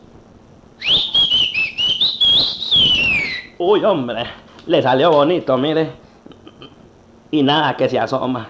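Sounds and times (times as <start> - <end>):
person whistling to call someone: 0.8 - 3.6
speech: 3.6 - 6.0, 7.3 - 8.4.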